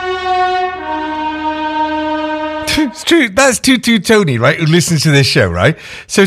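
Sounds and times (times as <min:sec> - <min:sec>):
passing train horn blaring while driving past a house: 0:00.0 - 0:03.1
speech: 0:02.8 - 0:06.2.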